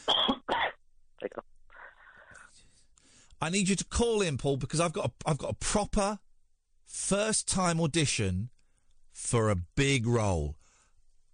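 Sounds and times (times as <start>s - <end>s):
person coughing into a phone mouthpiece: 0.0s - 1.4s
speech: 3.4s - 6.2s, 6.9s - 8.6s, 9.2s - 10.6s.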